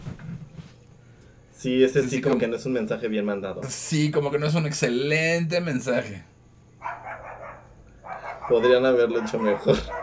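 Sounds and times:
low hum: 0:00.0 - 0:10.0
speech: 0:01.6 - 0:06.3, 0:08.5 - 0:10.0
dogs fighting: 0:06.8 - 0:10.0.

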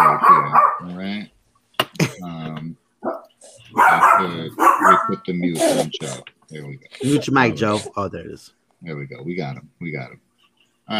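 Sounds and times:
dog barking: 0:00.0 - 0:01.0, 0:03.0 - 0:05.2
speech: 0:05.3 - 0:10.2.

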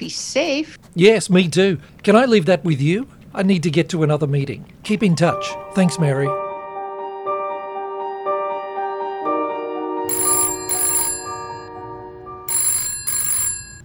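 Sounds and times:
speech: 0:00.0 - 0:06.4
telephone ringing with jangling bell tones: 0:00.8 - 0:06.4, 0:10.1 - 0:13.8
steady electronic melody: 0:05.4 - 0:13.5.

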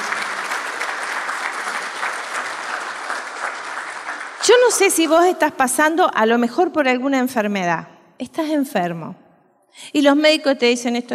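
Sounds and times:
audience applause: 0:00.0 - 0:05.1
speech: 0:04.5 - 0:09.2, 0:09.8 - 0:11.1.

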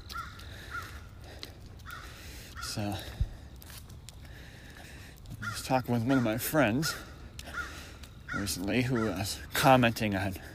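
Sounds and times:
crow cawing: 0:00.0 - 0:03.0, 0:04.3 - 0:09.4
speech: 0:02.8 - 0:03.2, 0:05.6 - 0:07.1, 0:08.4 - 0:10.4.

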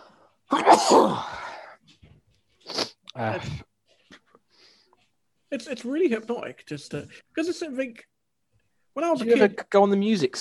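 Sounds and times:
person sneezing: 0:00.5 - 0:01.7
brief sniff-like breath: 0:02.6 - 0:03.0
speech: 0:03.2 - 0:03.7, 0:05.5 - 0:08.1, 0:09.0 - 0:10.3.

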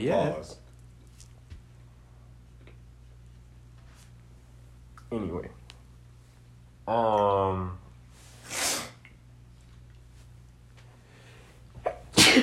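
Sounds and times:
speech: 0:00.0 - 0:00.6, 0:05.1 - 0:05.6, 0:06.9 - 0:07.8
person sneezing: 0:11.8 - 0:12.4.

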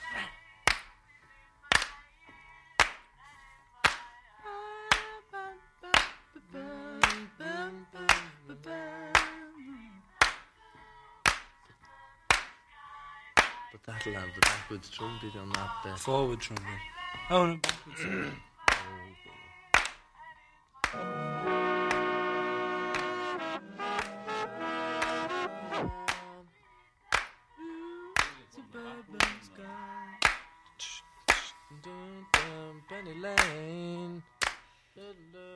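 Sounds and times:
rhythmic handclaps in a studio music recording: 0:00.6 - 0:01.0, 0:01.6 - 0:03.2, 0:03.8 - 0:04.2, 0:04.8 - 0:05.2, 0:05.8 - 0:07.4, 0:08.0 - 0:09.5, 0:10.1 - 0:11.7, 0:12.3 - 0:12.7, 0:13.4 - 0:15.8, 0:16.4 - 0:18.0, 0:18.6 - 0:20.1, 0:20.8 - 0:26.5, 0:27.1 - 0:27.5, 0:28.1 - 0:29.6, 0:30.2 - 0:32.7, 0:33.3 - 0:34.7
speech: 0:14.0 - 0:18.5
sustained keyboard chords: 0:20.9 - 0:26.3.

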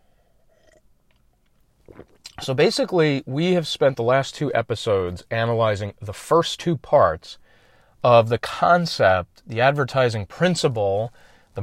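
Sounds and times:
swallow: 0:00.4 - 0:02.5
person slurping a sip of coffee: 0:00.5 - 0:00.9, 0:01.8 - 0:02.5
soft mouth clicks: 0:00.5 - 0:02.5
speech: 0:02.4 - 0:07.4, 0:08.0 - 0:11.6.

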